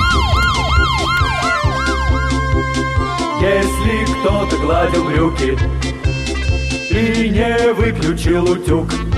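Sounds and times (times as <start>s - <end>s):
fire engine siren wailing: 0.0s - 5.7s
speech: 4.2s - 5.9s, 6.9s - 9.0s.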